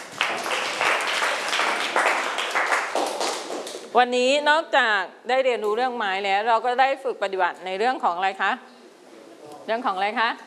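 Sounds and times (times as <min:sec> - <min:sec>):
classroom group applauding a classmate: 0:00.0 - 0:03.9
speech: 0:03.9 - 0:08.7, 0:09.6 - 0:10.4.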